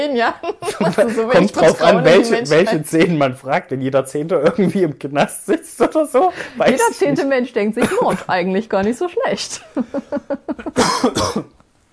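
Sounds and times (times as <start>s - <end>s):
speech: 0.0s - 11.6s
laughter: 0.4s - 2.9s
hard harsh coughing with rasping hacks: 10.7s - 11.6s.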